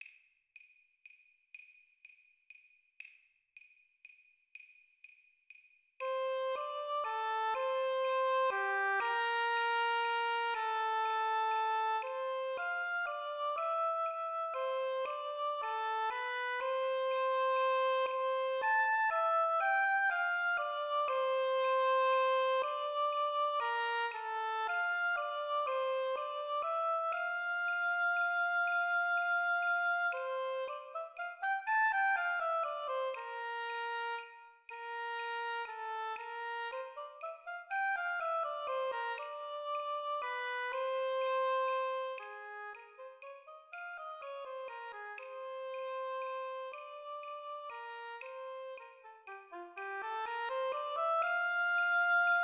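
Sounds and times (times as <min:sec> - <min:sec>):
oboe playing: 0:06.0 - 0:52.4.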